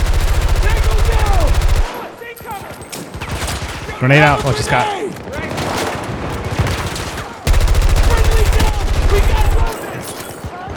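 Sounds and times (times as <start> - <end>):
dense rapid automatic gunfire in a video game: 0.0 - 2.2, 5.6 - 10.0
scattered quieter gunshots in a video game: 0.0 - 2.2, 5.4 - 10.5
speech: 4.0 - 5.0.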